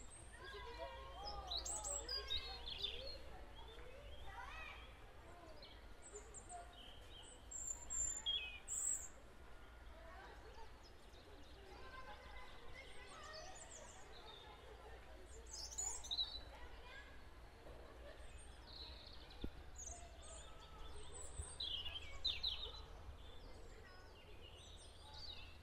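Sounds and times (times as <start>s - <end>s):
small birds chirping and twittering: 0.0s - 17.2s, 18.0s - 25.6s.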